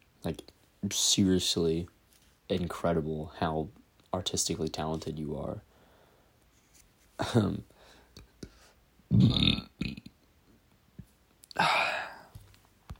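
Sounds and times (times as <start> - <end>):
speech: 0.3 - 5.7, 7.2 - 7.7, 9.1 - 9.7
person burping: 9.1 - 10.2, 11.5 - 12.3.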